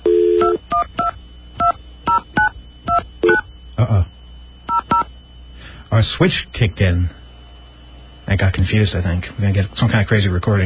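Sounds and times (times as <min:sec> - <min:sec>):
steady telephone dial tone: 0:00.0 - 0:00.8
telephone keypad DTMF tones: 0:00.0 - 0:03.5, 0:04.7 - 0:05.1
speech: 0:06.0 - 0:07.2, 0:08.3 - 0:10.6.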